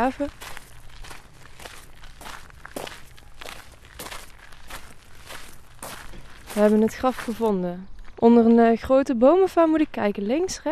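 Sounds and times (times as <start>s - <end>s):
speech: 0.0s - 0.6s, 6.6s - 10.7s
footsteps crunching outdoors through a large cemetery: 0.0s - 8.8s.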